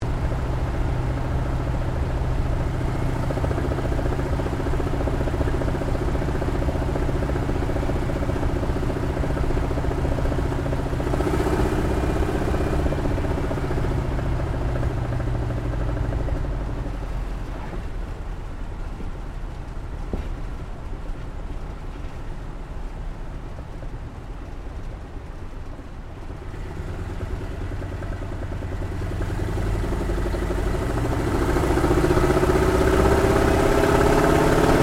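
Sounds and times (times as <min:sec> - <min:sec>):
CAC Wirraway CA-16 aircraft engine on approach heard from interior: 0:00.0 - 0:34.8.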